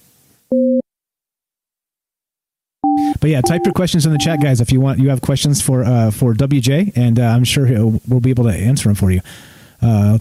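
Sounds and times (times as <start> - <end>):
dual-pitched telephone busy-signal tone: 2.8 - 4.5
faint low noise: 2.8 - 10.1
speech: 3.2 - 10.1.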